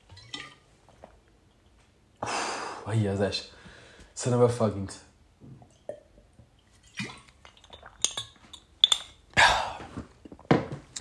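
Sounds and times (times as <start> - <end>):
soft breaths: 2.2 - 4.2
speech: 2.9 - 3.6, 4.2 - 5.1
person gulping and swallowing water: 5.4 - 8.2, 9.2 - 11.0
glass clinking: 7.5 - 9.2.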